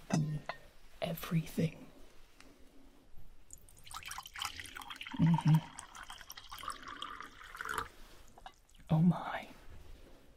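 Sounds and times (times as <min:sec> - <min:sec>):
speech: 0:01.1 - 0:01.8, 0:05.2 - 0:05.8, 0:08.9 - 0:09.3
tea pouring into a cup: 0:03.5 - 0:08.9.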